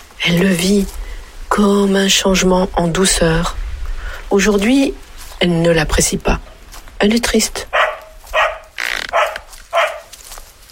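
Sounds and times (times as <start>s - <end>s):
speech: 0.2s - 1.0s, 1.6s - 3.6s, 4.3s - 7.8s
female dog barking in woodland undergrowth: 7.7s - 10.2s.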